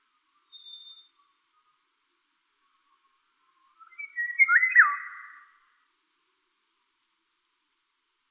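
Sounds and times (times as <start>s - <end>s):
Eurasian golden oriole Oriolus oriolus song with fluty whistle: 0.0s - 1.3s, 3.8s - 5.7s.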